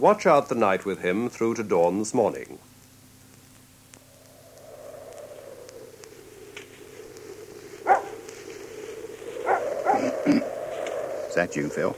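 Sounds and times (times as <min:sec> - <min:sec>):
speech: 0:00.0 - 0:02.7, 0:11.4 - 0:11.9
steady low hum: 0:00.0 - 0:11.9
dog barking: 0:07.8 - 0:08.1.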